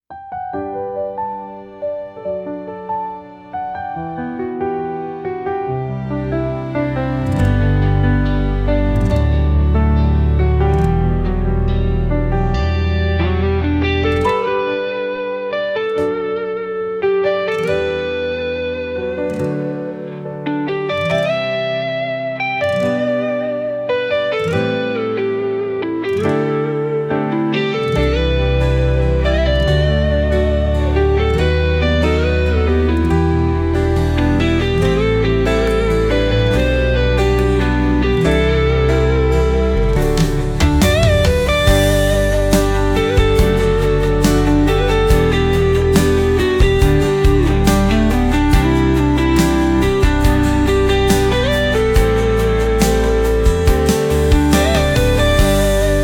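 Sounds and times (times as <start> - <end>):
guitar melody in instrumental social media music: 0.0 - 56.0
piano in instrumental social media music: 0.0 - 56.0
drums in instrumental social media music: 39.9 - 56.0.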